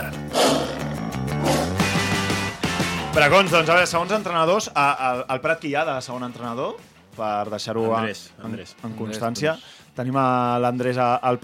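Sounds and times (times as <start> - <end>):
tiger roaring: 0.0 - 2.1
speech: 3.2 - 11.4.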